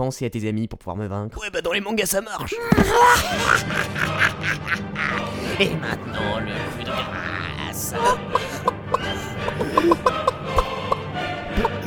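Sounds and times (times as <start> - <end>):
speech: 0.0 - 10.2
laughter: 2.6 - 11.8
hen clucking: 6.9 - 11.8.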